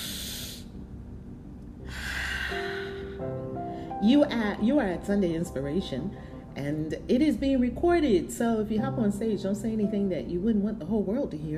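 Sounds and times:
deep breath: 0.0s - 0.8s, 1.8s - 4.0s
speech: 4.0s - 11.5s.

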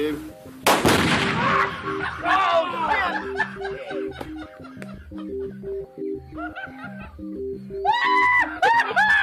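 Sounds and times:
explosives blowing up feral hogs during a hunt: 0.7s - 2.0s
excited voices: 1.4s - 4.0s, 7.8s - 9.2s
people laughing: 1.4s - 9.2s.

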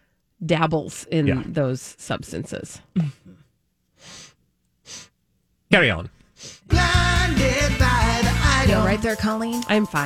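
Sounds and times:
speech: 0.4s - 3.4s, 5.7s - 8.0s, 8.7s - 10.0s
throaty vocal sound: 1.2s - 1.6s
person sniffling: 3.0s - 5.2s, 6.3s - 6.7s.

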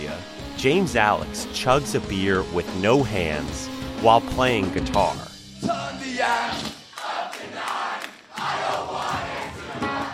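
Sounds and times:
speech: 0.6s - 6.8s
packed hometown crowd roaring and cheering at a rock show in a basement in Philadelphia: 5.6s - 10.1s.

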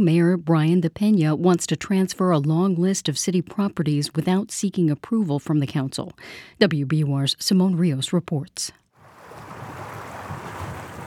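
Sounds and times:
speech: 0.0s - 8.8s
water gushing under the ruins of an old paper mill factory: 9.0s - 11.0s.

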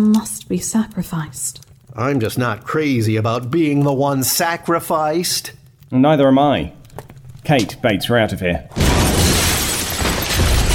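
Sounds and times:
speech: 0.0s - 8.9s
door of a home being smashed open: 8.7s - 10.7s
splintering wood and debris: 8.7s - 10.7s.

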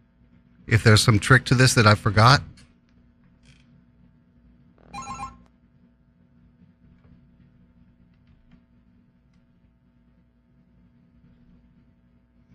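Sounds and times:
room hum: 0.0s - 12.5s
speech: 0.7s - 2.6s
studio call-in phone line ringing: 4.9s - 5.4s.

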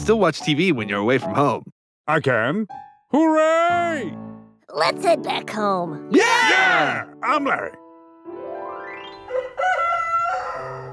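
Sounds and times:
speech: 0.0s - 7.8s
rooster crowing: 9.2s - 10.9s.

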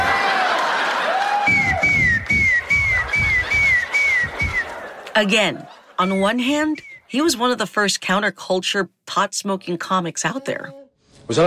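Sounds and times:
laughter: 0.0s - 6.6s
whistling snot during a kiss: 1.4s - 4.8s, 6.7s - 7.1s
speech: 5.2s - 11.4s.

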